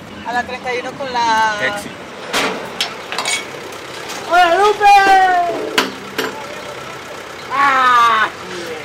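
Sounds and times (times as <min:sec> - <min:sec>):
nearly full truck carrying broken engine parts idling: 0:00.0 - 0:08.8
speech: 0:00.3 - 0:02.6, 0:04.3 - 0:05.8, 0:07.5 - 0:08.6
sharp knocks: 0:05.1 - 0:06.5.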